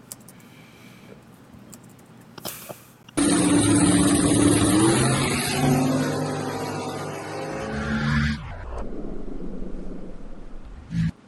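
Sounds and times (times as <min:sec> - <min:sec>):
two drag race cars launching with screaming engines: 0:03.2 - 0:11.1
quieter rumble: 0:08.3 - 0:11.2.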